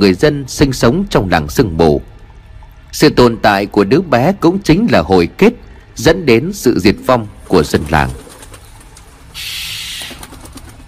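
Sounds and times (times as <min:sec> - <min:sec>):
speech: 0:00.0 - 0:02.1, 0:02.9 - 0:08.2
wings flapping: 0:07.5 - 0:10.8
harsh crow screech inside a cave: 0:09.4 - 0:10.2.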